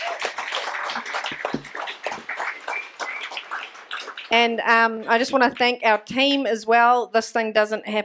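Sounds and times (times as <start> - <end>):
audience applauding speakers at an event: 0.0 - 6.1
speech: 4.3 - 8.0.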